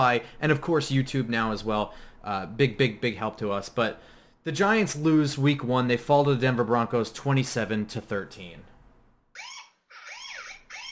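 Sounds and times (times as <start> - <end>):
speech: 0.0 - 8.7
electronic alarm siren wailing: 9.4 - 10.9.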